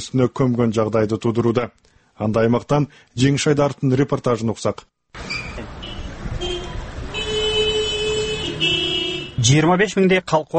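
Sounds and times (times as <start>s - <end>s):
speech: 0.0s - 5.2s, 9.4s - 10.5s
street noise on narrow town streets: 5.1s - 10.5s
car horns honking in a traffic jam on narrow small-town streets: 5.2s - 9.5s
rumble of car engines in a traffic jam: 5.2s - 10.5s.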